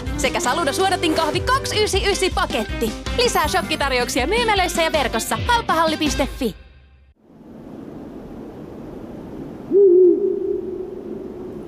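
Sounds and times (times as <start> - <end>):
speech: 0.2 - 6.6
faint hiss: 7.2 - 11.6
owl giving a long low hoot: 9.7 - 11.6.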